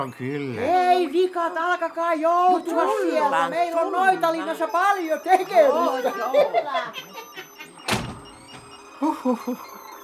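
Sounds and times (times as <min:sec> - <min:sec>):
speech: 0:00.0 - 0:07.4, 0:09.0 - 0:09.8
laughter: 0:03.0 - 0:07.9, 0:09.0 - 0:09.7
heavy door slamming: 0:07.8 - 0:08.8.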